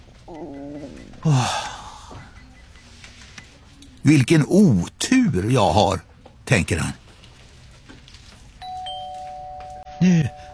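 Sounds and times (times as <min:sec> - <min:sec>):
speech: 0:00.3 - 0:01.6, 0:04.0 - 0:07.0, 0:10.0 - 0:10.4
two-tone ding-dong chime: 0:08.6 - 0:10.5.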